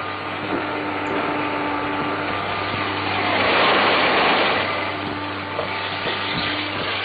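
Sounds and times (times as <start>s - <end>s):
vacuum cleaner running with a droning whir: 0.0s - 7.0s.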